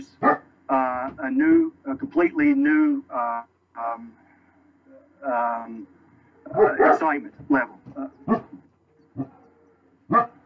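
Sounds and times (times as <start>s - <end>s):
dog yipping: 0.2s - 0.4s, 6.5s - 7.1s, 8.2s - 10.4s
dogs barking: 0.2s - 0.5s, 6.4s - 10.4s
speech: 1.3s - 4.2s, 4.9s - 8.4s.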